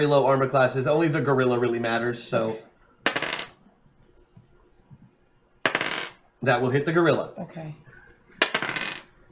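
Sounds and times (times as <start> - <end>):
speech: 0.0 - 2.7, 6.4 - 7.8
dice rolled in a tabletop game clattering: 3.0 - 3.6, 5.6 - 6.2, 8.4 - 9.1.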